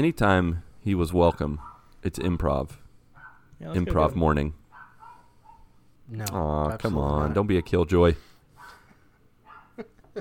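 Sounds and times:
speech: 0.0 - 2.8, 3.6 - 4.6, 6.1 - 8.3, 9.8 - 10.2
dog barking: 1.6 - 1.9, 3.2 - 3.5, 4.7 - 5.7, 8.6 - 8.8, 9.4 - 9.9.

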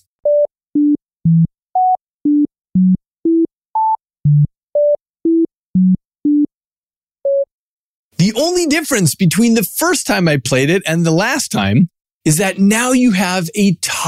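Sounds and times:
scrambled melody of pure electronic tones as short beeps: 0.2 - 6.5, 7.2 - 7.5
speech: 8.3 - 14.0.

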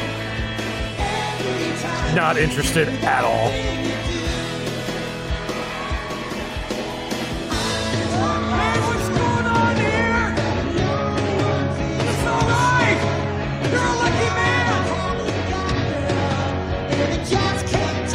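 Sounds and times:
dense continuous band backing on a recorded song: 0.0 - 18.1
melodic singing voice on a recorded song: 0.9 - 4.6, 8.2 - 18.1
speech: 2.1 - 4.0.

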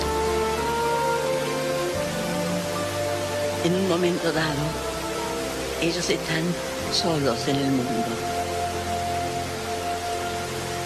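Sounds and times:
rushing water: 0.0 - 10.8
speech: 3.6 - 4.9, 5.8 - 8.4.

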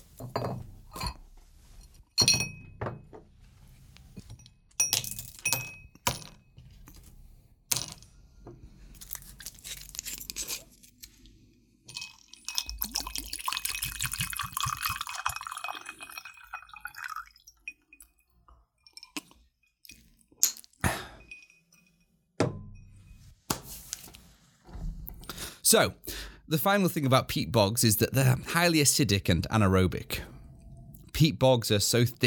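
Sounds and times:
glass clinking and knocking: 0.2 - 1.2, 1.8 - 3.1, 4.2 - 6.4, 11.9 - 23.3
whiskey being poured into a glass: 11.9 - 18.2
speech: 25.7 - 30.3, 31.2 - 32.2.

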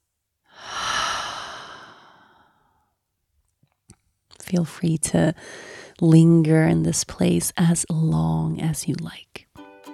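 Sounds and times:
deep slow breath during a calm breathing exercise: 0.5 - 2.9
speech: 4.5 - 9.4.

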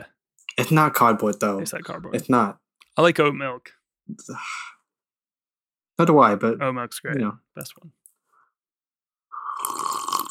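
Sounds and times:
speech: 0.6 - 4.8, 6.0 - 8.0
someone blowing through a straw into a glass of milk: 9.3 - 10.2.

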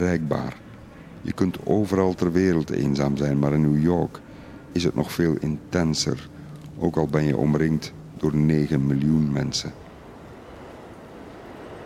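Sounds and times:
speech: 0.0 - 0.6, 1.2 - 9.8
New York City subway train rumbling: 9.8 - 11.8.

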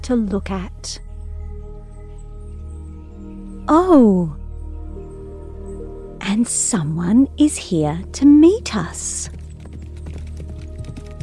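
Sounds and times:
speech: 0.0 - 1.0, 3.7 - 4.4, 6.3 - 9.4
horse hooves clip-clopping at a walking pace: 7.5 - 11.2.

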